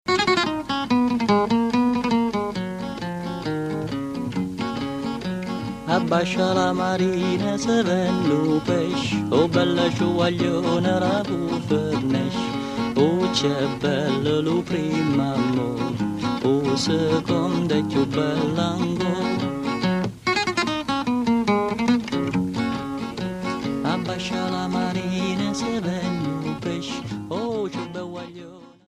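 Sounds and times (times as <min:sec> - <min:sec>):
Barese stornello folk song from Bari Italy: 0:00.1 - 0:28.8.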